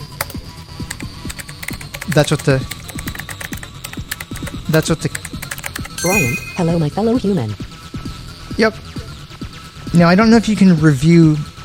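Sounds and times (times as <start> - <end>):
typing a chat message on a computer keyboard: 0.1 - 6.6
speech: 2.1 - 2.8, 4.7 - 5.4, 6.0 - 7.6, 8.6 - 8.8, 10.0 - 11.5.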